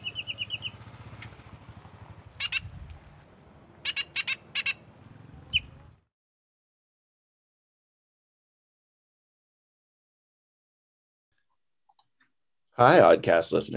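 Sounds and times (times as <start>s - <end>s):
songbird whistling its song: 0.0s - 0.8s, 2.4s - 2.7s, 3.8s - 4.8s, 5.5s - 5.8s
speech: 12.8s - 13.7s.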